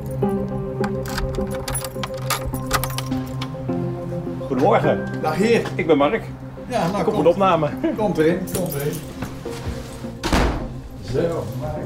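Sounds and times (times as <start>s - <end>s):
front door swinging shut with a solid thunk: 0.0s - 3.8s, 8.5s - 11.3s
speech: 4.5s - 9.1s, 11.1s - 11.8s.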